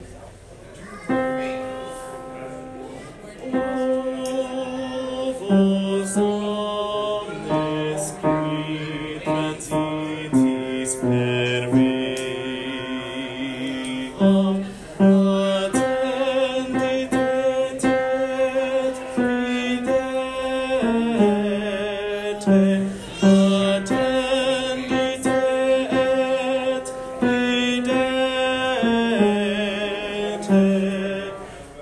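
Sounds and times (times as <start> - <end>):
bass choir voices singing holy week choir practice: 3.9 - 31.8.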